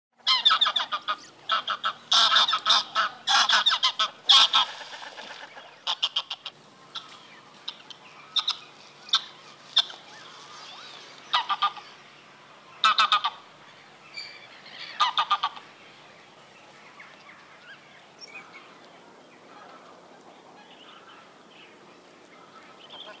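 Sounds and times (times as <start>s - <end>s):
Greylag goose: 0.2s - 7.8s, 8.4s - 12.0s, 12.8s - 13.5s, 14.8s - 15.6s.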